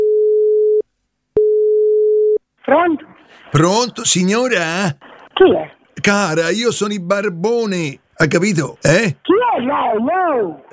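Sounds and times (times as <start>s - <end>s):
telephone line tone on a phone call: 0.0s - 0.8s, 1.4s - 2.4s
speech: 2.7s - 10.7s.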